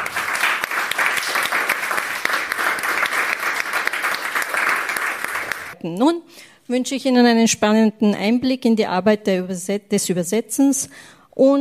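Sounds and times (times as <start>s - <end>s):
audience applauding to welcome a speaker: 0.0s - 5.8s
speech: 5.8s - 11.6s.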